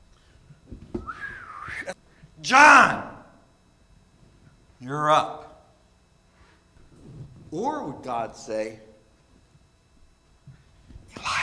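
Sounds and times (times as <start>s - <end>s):
person whistling a short wavering note: 1.0s - 2.0s
speech: 1.9s - 3.1s, 4.8s - 5.4s, 7.5s - 8.9s.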